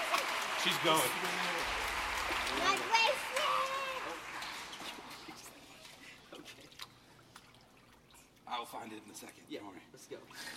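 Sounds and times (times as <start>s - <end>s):
water splashing as a person is immersed for baptism: 0.0s - 8.4s
speech: 0.6s - 4.2s, 8.5s - 10.5s
water dripping and trickling: 1.6s - 9.5s.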